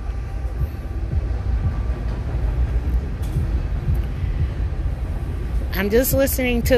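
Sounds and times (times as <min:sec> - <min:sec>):
passing train heard from a porch: 0:00.0 - 0:06.7
speech: 0:05.8 - 0:06.7.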